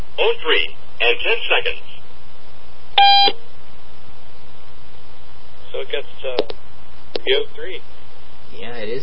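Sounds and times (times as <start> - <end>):
speech: 0.2 - 2.0, 3.0 - 3.4, 5.7 - 6.6, 7.2 - 7.9, 8.5 - 9.0
bright buzzy electronic phone tone: 3.0 - 3.4.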